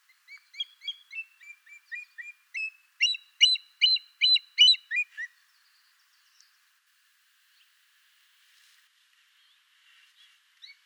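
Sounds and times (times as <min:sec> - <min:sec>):
Buteogallus anthracinus calling: 0:00.3 - 0:05.3.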